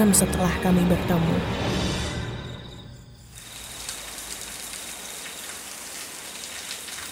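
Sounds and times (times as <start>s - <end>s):
speech: 0.0s - 1.9s
steady rain pattering on a surface: 3.4s - 7.0s.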